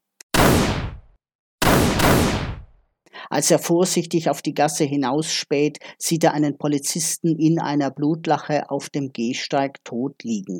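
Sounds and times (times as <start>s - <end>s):
gunshots fired in Reithofer Park, Rudolfsheim: 0.4s - 1.0s, 1.6s - 2.7s
speech: 3.3s - 10.5s.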